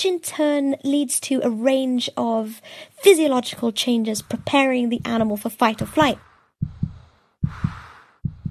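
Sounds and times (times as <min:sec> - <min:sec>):
speech: 0:00.0 - 0:06.8
racing heartbeat: 0:04.2 - 0:08.4.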